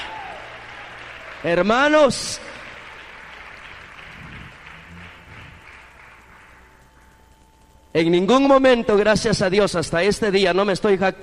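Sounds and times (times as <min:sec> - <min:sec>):
church congregation applauding: 0:00.0 - 0:07.4
speech: 0:01.4 - 0:02.5, 0:08.0 - 0:11.2.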